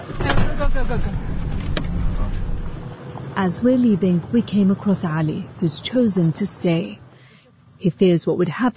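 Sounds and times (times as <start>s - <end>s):
steady motorized hum: 0.1s - 3.4s
speech: 3.4s - 7.0s, 7.8s - 8.7s.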